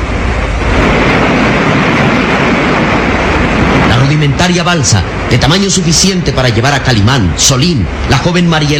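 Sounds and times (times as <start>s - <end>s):
turbulent river water rushing over rapids: 0.0s - 8.7s
speech: 4.1s - 8.7s.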